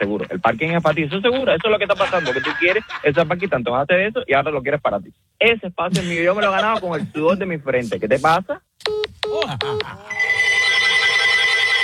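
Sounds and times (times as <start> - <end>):
laughter: 0.0 - 3.6, 5.9 - 7.2, 9.4 - 10.4
speech: 0.0 - 10.4
telephone ringing: 9.7 - 11.8.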